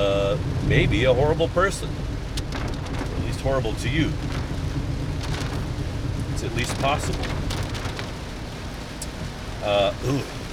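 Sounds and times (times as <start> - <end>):
heavy rain: 0.0 - 10.5
speech: 0.7 - 2.1, 3.4 - 4.4, 6.4 - 7.4, 9.6 - 10.4.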